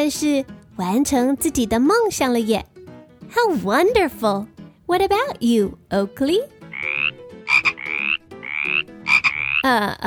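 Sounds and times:
speech: 0.0 - 2.7, 3.3 - 6.6, 9.6 - 10.0
frog croaking: 6.7 - 10.0.

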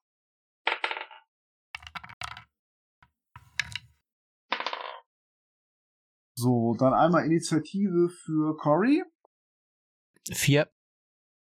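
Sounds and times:
dice rolled on a table for initiative in a tabletop role-playing game: 0.7 - 1.2, 1.8 - 2.5, 3.4 - 5.1
speech: 6.4 - 9.1, 10.3 - 10.8.

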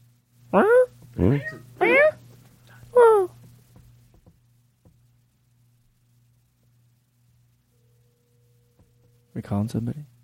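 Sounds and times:
faint steady low hum: 0.0 - 10.2
speech: 0.5 - 1.7, 9.4 - 10.1
human voice imitating a cat meowing: 0.6 - 2.2.

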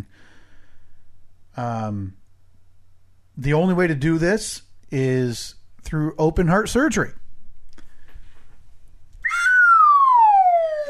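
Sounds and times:
faint low noise: 0.0 - 10.8
speech: 1.6 - 2.2, 3.4 - 7.2
descending slide whistle sound effect: 9.2 - 10.8.

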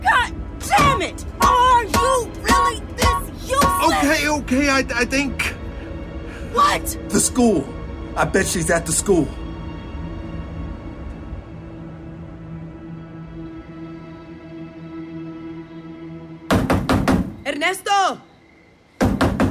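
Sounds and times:
person calling out in a raised voice: 0.1 - 4.4
knocking on a door: 0.7 - 4.0, 16.5 - 17.4, 19.0 - 19.4
speech: 4.4 - 5.5, 6.5 - 9.4.

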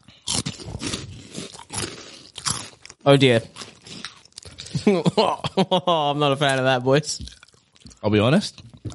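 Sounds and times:
crunching of a crispy puffed snack: 0.0 - 4.8
speech: 3.1 - 3.6, 4.8 - 7.3, 8.0 - 8.7
laughter: 4.7 - 6.3.

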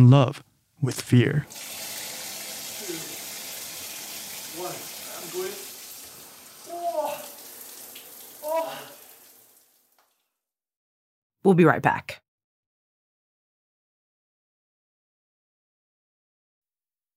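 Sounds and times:
speech: 0.0 - 1.8, 11.5 - 12.2
cold shower water running: 1.3 - 10.2.

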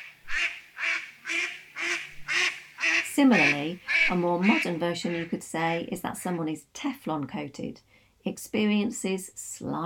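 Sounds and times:
duck quacking: 0.0 - 6.4
speech: 3.2 - 9.8.

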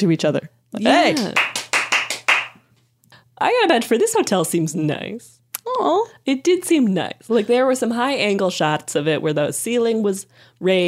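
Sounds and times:
speech: 0.0 - 1.5, 3.4 - 10.8
hands clapping: 0.9 - 2.6.

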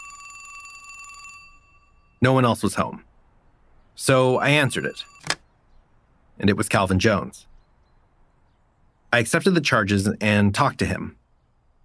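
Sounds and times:
telephone bell in a house ringing: 0.0 - 2.3, 4.2 - 5.4
speech: 2.2 - 3.1, 4.0 - 5.4, 6.4 - 7.5, 9.1 - 11.2.

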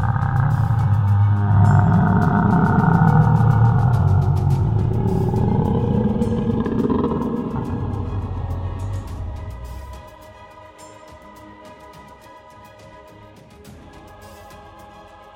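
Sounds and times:
deep bellowing roar of giant creature: 0.0 - 10.2.

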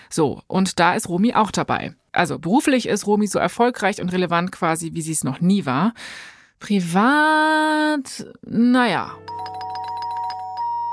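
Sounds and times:
speech: 0.1 - 9.6
doorbell ringing with a steady electronic chime: 9.3 - 10.9.

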